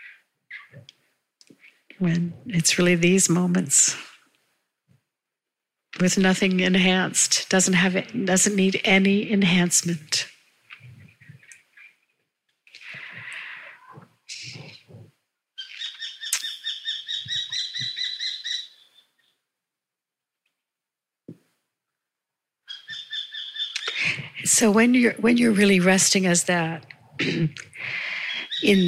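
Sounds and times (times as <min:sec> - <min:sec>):
birds twittering: 0:00.0 - 0:00.8, 0:12.8 - 0:15.0, 0:15.6 - 0:19.4, 0:22.7 - 0:24.1, 0:27.8 - 0:28.8
speech: 0:02.0 - 0:04.1, 0:06.0 - 0:10.3, 0:24.6 - 0:28.0, 0:28.6 - 0:28.8
bird trilling: 0:15.6 - 0:19.3, 0:22.7 - 0:24.0, 0:28.1 - 0:28.8.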